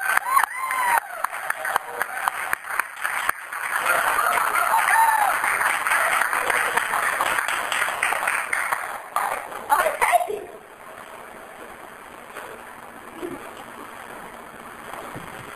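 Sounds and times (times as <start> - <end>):
audience cheering and shouting: 0.0 - 2.6, 3.8 - 6.5
audience clapping: 0.0 - 10.2.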